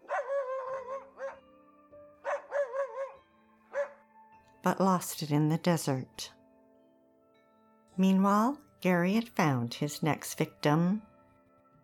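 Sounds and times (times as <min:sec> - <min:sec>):
tracking dogs barking and baying: 0:00.0 - 0:01.5, 0:02.2 - 0:04.0
speech: 0:04.6 - 0:06.4, 0:08.0 - 0:11.1.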